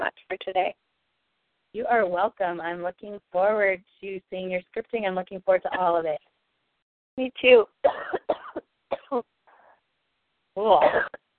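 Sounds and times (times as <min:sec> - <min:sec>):
speech: 0:00.4 - 0:00.8, 0:01.7 - 0:06.3, 0:07.2 - 0:08.4, 0:09.1 - 0:09.3, 0:10.6 - 0:11.2
person coughing harshly: 0:07.8 - 0:09.2, 0:10.8 - 0:11.2.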